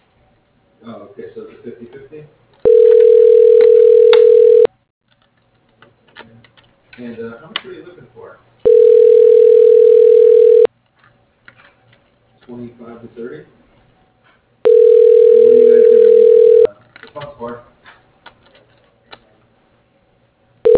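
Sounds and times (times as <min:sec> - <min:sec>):
ringback tone on a telephone line as a call is transferred to voicemail: 0:02.6 - 0:04.7, 0:08.7 - 0:10.7, 0:14.7 - 0:16.7.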